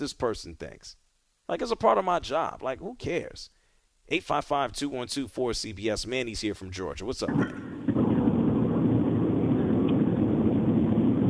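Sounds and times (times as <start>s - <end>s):
speech: 0.0s - 7.7s
engine drone: 7.6s - 11.2s.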